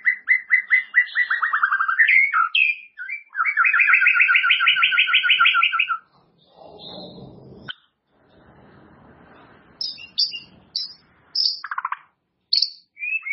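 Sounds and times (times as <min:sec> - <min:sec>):
white-rumped shama song with whistles and rattling trill: 0:00.0 - 0:06.0, 0:09.8 - 0:13.3.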